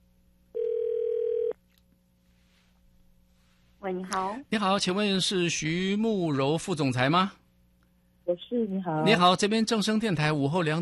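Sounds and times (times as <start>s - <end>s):
telephone ringback tone as call connects: 0.6s - 1.6s
speech: 3.8s - 7.4s, 8.3s - 10.8s.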